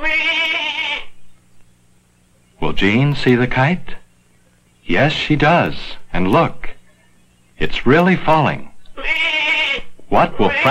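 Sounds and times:
billy goat bleating: 0.0s - 1.2s, 9.0s - 10.7s
faint low hum: 0.0s - 10.7s
speech: 2.8s - 4.0s, 4.9s - 6.8s, 7.6s - 9.3s, 10.1s - 10.7s.

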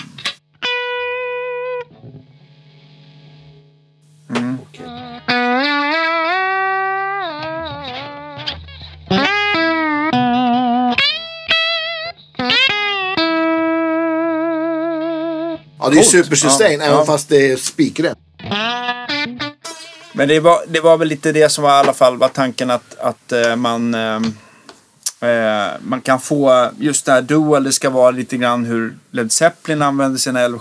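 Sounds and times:
sustained electric guitar notes played through a compressor pedal: 0.0s - 2.5s, 4.1s - 20.7s
steady background hiss: 4.0s - 4.9s, 15.8s - 18.2s, 19.7s - 30.5s
speech: 15.9s - 18.2s, 20.2s - 24.4s, 25.2s - 30.5s.

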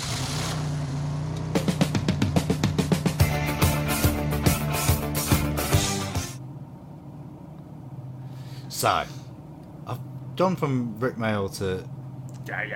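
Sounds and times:
car driving away: 0.0s - 9.4s
speech: 8.8s - 9.2s, 9.9s - 12.7s.

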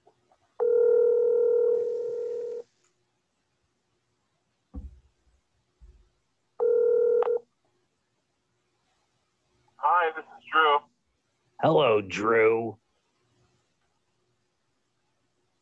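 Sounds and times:
telephone dialing tones before a call: 0.6s - 2.6s, 6.6s - 7.4s
speech: 11.7s - 12.8s.

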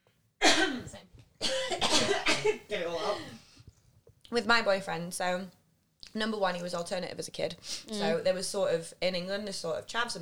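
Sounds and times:
harsh explosive coughs: 0.4s - 3.4s
speech: 0.6s - 3.4s, 4.3s - 10.2s.

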